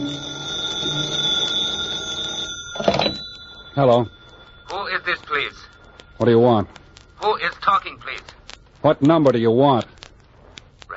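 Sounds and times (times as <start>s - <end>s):
telephone bell ringing: 0.0s - 6.7s
speech: 3.8s - 4.2s, 5.0s - 10.0s.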